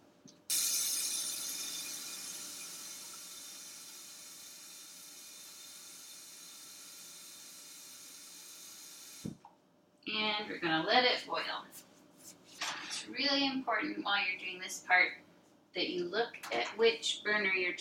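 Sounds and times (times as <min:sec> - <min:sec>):
water pouring from a tap into a metal pot: 0:00.5 - 0:09.2
speech: 0:10.4 - 0:11.9, 0:13.1 - 0:17.7.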